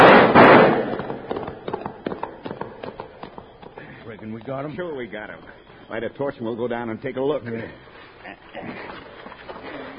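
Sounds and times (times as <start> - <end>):
gunfire from several guns in an ambush on a rider: 0.0 - 3.5
speech: 4.5 - 8.9.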